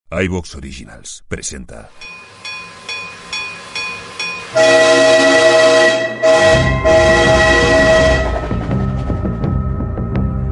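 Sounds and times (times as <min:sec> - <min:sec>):
speech: 0:00.1 - 0:02.3
heavy rumbling and clattering rail noise: 0:02.0 - 0:10.4
train horn toots and blast: 0:04.5 - 0:08.7.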